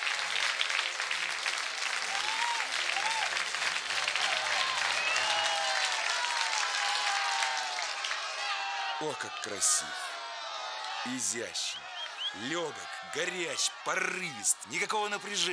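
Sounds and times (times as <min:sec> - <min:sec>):
large theatre audience applause: 0:00.0 - 0:15.5
speech: 0:09.0 - 0:10.1, 0:11.0 - 0:15.5
whistle-like calls: 0:11.6 - 0:12.7.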